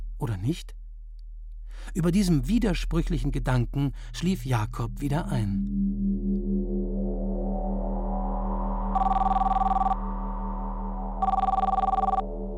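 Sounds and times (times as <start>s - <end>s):
steady low drone: 0.0s - 12.5s
speech: 0.2s - 0.8s, 1.7s - 6.4s
electronic doorbell ringing with trilling tones: 9.0s - 10.0s, 11.2s - 12.3s.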